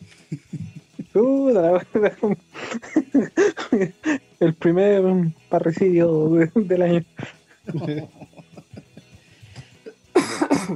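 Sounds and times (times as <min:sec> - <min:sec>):
laughter: 0:00.2 - 0:04.2, 0:07.2 - 0:10.7
speech: 0:00.3 - 0:00.6, 0:01.2 - 0:08.2
person coughing harshly: 0:10.2 - 0:10.7.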